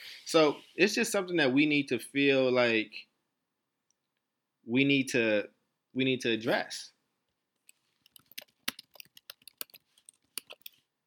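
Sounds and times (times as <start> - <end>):
speech: 0.3 - 3.1, 4.7 - 7.0
typing on a computer keyboard: 7.9 - 10.8.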